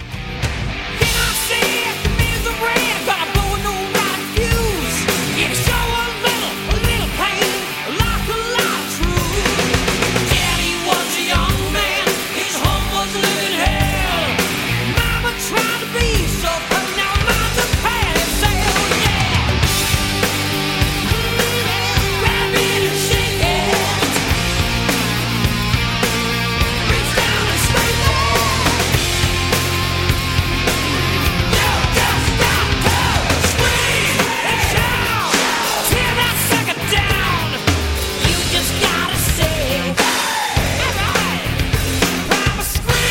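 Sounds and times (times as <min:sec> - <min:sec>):
dense distorted guitars: 0:00.0 - 0:43.0
heavy drums pounding out a steady beat: 0:00.0 - 0:43.0
strained vocal line in a hard rock song: 0:01.0 - 0:43.0.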